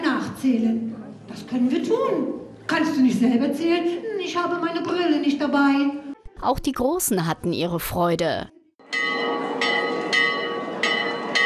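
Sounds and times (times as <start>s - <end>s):
speech: 0.4s - 9.0s
large castle tower bell ringing in swinging strokes: 8.8s - 11.4s.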